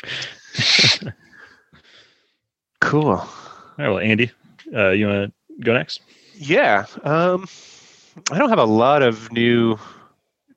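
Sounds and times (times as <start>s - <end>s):
quiet breathing: 0.0s - 0.6s, 1.2s - 2.6s, 3.2s - 3.8s, 6.0s - 6.4s, 7.4s - 8.2s, 9.8s - 10.4s
person sneezing: 0.1s - 1.2s
speech: 2.9s - 10.0s.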